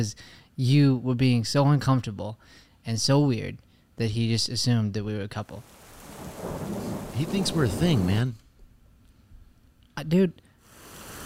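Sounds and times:
speech: 0.0s - 8.4s, 10.0s - 10.4s
rain falling: 5.6s - 8.3s, 10.6s - 11.2s.

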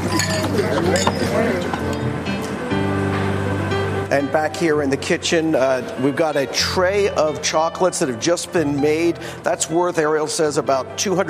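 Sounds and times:
murmuring voices: 0.0s - 2.3s
glasses clinking in a toast: 0.0s - 2.6s
steady noise: 0.0s - 11.2s
speech: 4.1s - 11.2s.

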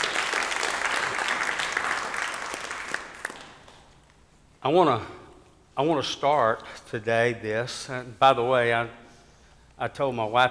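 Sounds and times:
audience clapping: 0.0s - 4.2s
speech: 4.6s - 5.2s, 5.8s - 9.0s, 9.8s - 10.4s.

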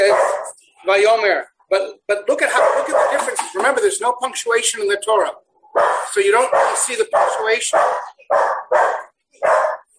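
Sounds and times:
dog barking excitedly: 0.0s - 0.6s, 2.4s - 3.6s, 5.7s - 9.9s
speech: 0.1s - 9.6s.

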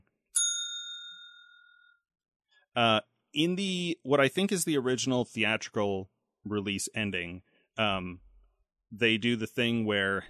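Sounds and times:
small bell struck once: 0.4s - 2.0s
speech: 2.8s - 8.2s, 8.9s - 10.2s.

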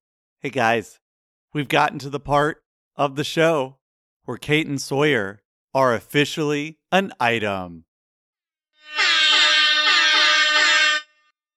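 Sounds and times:
speech: 0.4s - 7.9s
loud air horn blast with a harsh buzzy tone: 8.8s - 11.2s.

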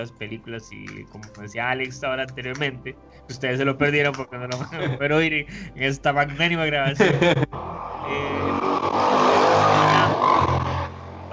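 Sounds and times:
speech: 0.0s - 8.4s
laughter: 4.5s - 7.6s
car driving past on a main street: 7.5s - 11.3s.

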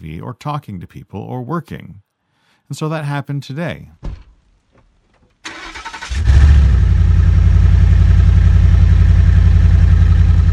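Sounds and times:
speech: 0.0s - 2.0s, 2.7s - 4.2s
SUV engine rumbling with loose blatty exhaust: 5.4s - 10.5s.

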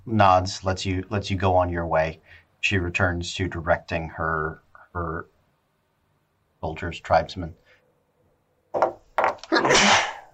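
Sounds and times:
speech: 0.1s - 5.3s, 6.6s - 7.6s, 8.7s - 9.0s
sneeze: 9.5s - 10.3s.

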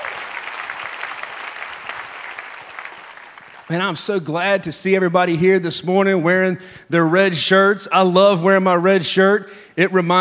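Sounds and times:
crowd clapping: 0.0s - 3.9s
speech: 3.7s - 10.1s.

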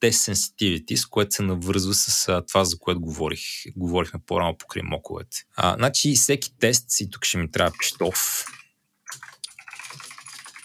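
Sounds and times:
speech: 0.0s - 8.6s
rapid typing on a computer keyboard: 7.7s - 10.6s.

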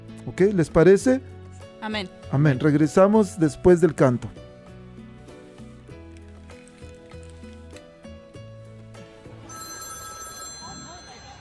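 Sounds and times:
speech: 0.2s - 4.4s
telephone ringing with electronic melody: 9.4s - 11.3s.

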